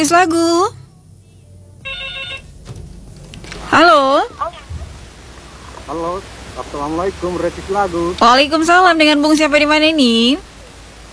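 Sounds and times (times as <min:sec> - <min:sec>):
speech: 0:00.0 - 0:00.8, 0:03.7 - 0:04.6, 0:05.9 - 0:10.5
steady low hum: 0:00.0 - 0:11.1
telephone ringing for an incoming call: 0:01.8 - 0:02.6.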